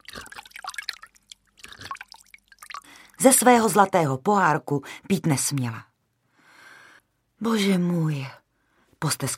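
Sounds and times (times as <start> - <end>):
water dripping and splashing as someone drinks from a stream: 0.0 - 3.4
speech: 3.2 - 5.9, 7.4 - 8.4, 9.0 - 9.3.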